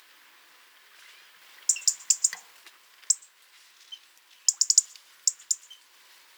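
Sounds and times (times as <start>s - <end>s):
European robin Erithacus rubecula ticking: 1.7s - 3.4s, 4.5s - 5.9s.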